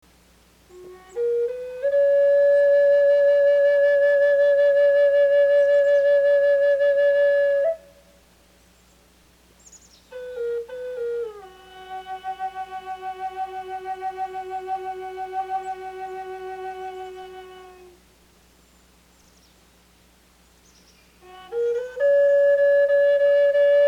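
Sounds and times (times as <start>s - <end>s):
flute playing: 0.7s - 8.1s, 10.1s - 18.0s, 21.2s - 23.8s.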